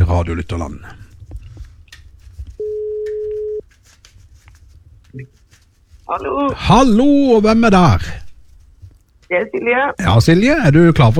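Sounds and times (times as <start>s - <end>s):
speech: 0.2s - 1.0s, 5.2s - 5.4s, 6.1s - 8.2s, 9.3s - 11.1s
faint rustling: 0.4s - 11.1s
ringback tone of outgoing phone call: 2.6s - 3.6s.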